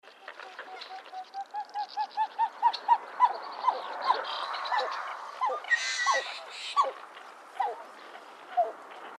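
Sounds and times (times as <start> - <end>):
pied-billed grebe calling: 0.3 - 7.0.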